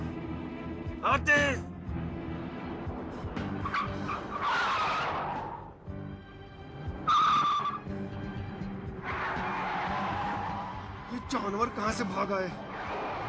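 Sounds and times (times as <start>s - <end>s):
speech: 1.0s - 1.7s, 11.4s - 12.7s
car engine roaring: 1.8s - 13.2s
car tires screeching while skidding: 2.1s - 5.9s, 6.5s - 13.2s.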